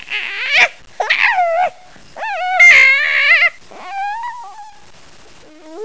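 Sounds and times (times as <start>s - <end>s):
puppies whimpering and yipping: 0.2s - 4.8s.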